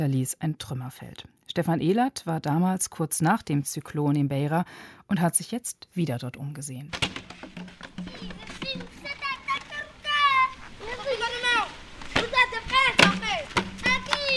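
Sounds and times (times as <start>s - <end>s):
speech: 0.0s - 9.2s
football being kicked by children outdoors: 6.9s - 8.9s, 13.0s - 14.2s
children shouting and chattering while playing football outdoors: 8.0s - 14.3s.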